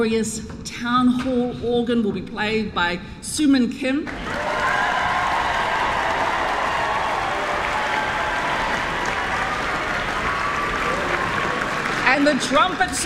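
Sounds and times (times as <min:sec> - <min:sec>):
speech: 0:00.0 - 0:04.8, 0:12.2 - 0:13.0
sustained applause from a large audience in a town hall: 0:04.1 - 0:13.0.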